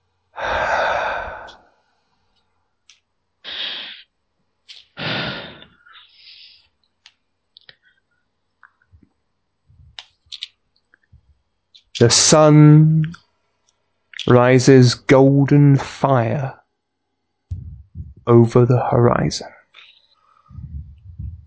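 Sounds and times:
person breathing and sighing for a relaxation exercise: 0.3 - 1.8, 3.4 - 4.1, 5.0 - 6.7
speech: 12.0 - 13.2, 14.2 - 16.6, 18.3 - 19.6.

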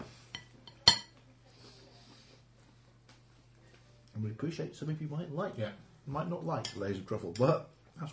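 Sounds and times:
cutlery clinking against plates while eating layered cake: 0.3 - 1.2
speech: 4.2 - 8.1.

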